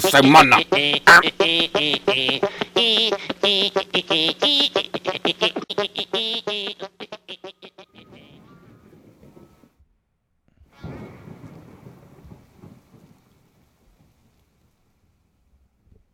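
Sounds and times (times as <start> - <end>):
speech: 0.0 - 7.1
thunder rumbling: 10.8 - 14.8
steady rain pouring: 10.9 - 15.2.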